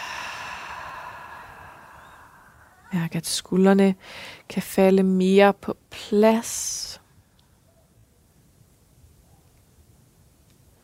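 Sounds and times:
slow breathing in through the nose and out through the mouth: 0.0 - 2.9
speech: 2.9 - 7.0.

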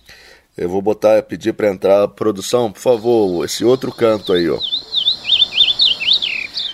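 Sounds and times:
speech: 0.6 - 5.0
songbird singing a rapid warbling phrase of whistled notes: 3.0 - 6.7.

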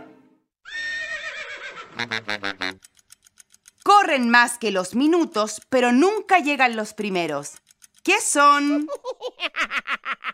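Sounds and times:
horse whinnying loudly: 0.6 - 2.2
speech: 2.0 - 2.9, 4.0 - 9.2.

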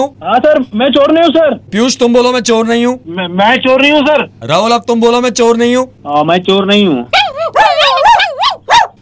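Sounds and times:
speech: 0.0 - 7.6
dog yelping and barking: 7.1 - 9.0.

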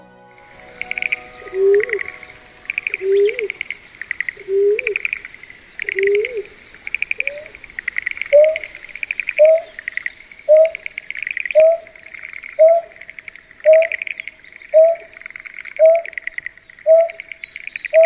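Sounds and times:
pulsing background chirr: 0.0 - 18.0
greater painted-snipe giving low hollow hoots in the suburbs of Tokyo, Japan: 0.4 - 13.0, 13.6 - 14.1, 14.7 - 15.2, 15.8 - 18.0.

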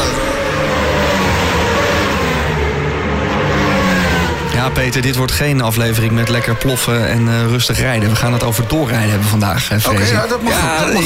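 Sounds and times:
sport motorcycle engine revving loudly: 0.0 - 9.4
speech: 4.7 - 11.0.

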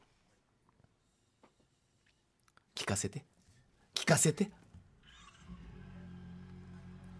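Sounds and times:
speech: 2.9 - 3.4, 4.1 - 4.6
motorcycle engine in neutral starting and idling: 4.9 - 7.1.

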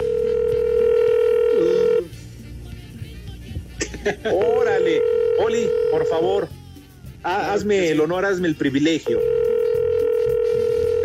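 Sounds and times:
telephone dial tone signalling an incoming call: 0.0 - 2.0, 4.8 - 6.3, 9.0 - 11.0
laughter: 3.8 - 4.6
speech: 4.0 - 6.6, 7.2 - 9.3.

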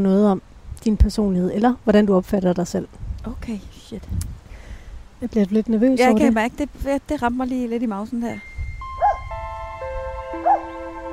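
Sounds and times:
speech: 0.0 - 4.4, 5.2 - 8.5
steady electronic tones: 8.3 - 11.1
golden retriever barking: 9.0 - 9.3, 10.4 - 10.7.

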